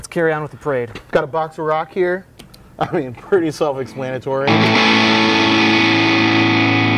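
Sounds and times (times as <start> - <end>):
speech: 0.1 - 5.3
electric guitar through overdrive distortion pedal: 4.5 - 6.9.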